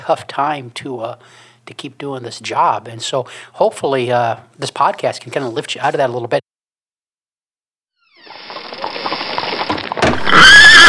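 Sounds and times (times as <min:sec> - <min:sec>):
speech: 0:00.1 - 0:06.4
horse hooves clopping: 0:08.4 - 0:10.3
horse whinnying: 0:10.0 - 0:10.8.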